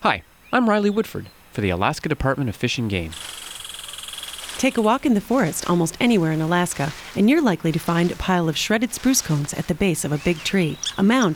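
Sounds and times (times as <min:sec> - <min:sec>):
speech: 0:00.0 - 0:03.4, 0:04.6 - 0:11.3
red squirrel rattling chatter: 0:03.1 - 0:11.3.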